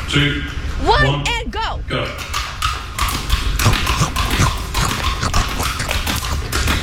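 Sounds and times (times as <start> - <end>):
speech: 0.1 - 2.3
crisp crunches of biting into apples: 3.6 - 6.6.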